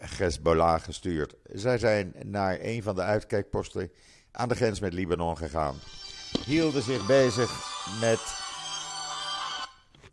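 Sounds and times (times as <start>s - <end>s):
speech: 0.2s - 8.4s
electronic telephone ringing: 5.8s - 10.1s.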